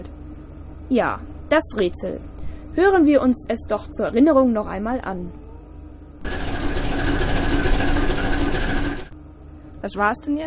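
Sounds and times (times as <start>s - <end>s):
faint constant whine: 0.0s - 10.4s
speech: 0.9s - 5.4s, 9.8s - 10.4s
sailing ship's engine running: 6.2s - 9.2s.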